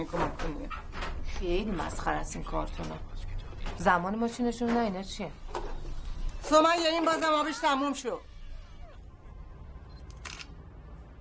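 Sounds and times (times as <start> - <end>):
speech: 0.0 - 5.5, 6.4 - 8.3
phone camera shutter click taking photos of a photo album: 10.0 - 10.6.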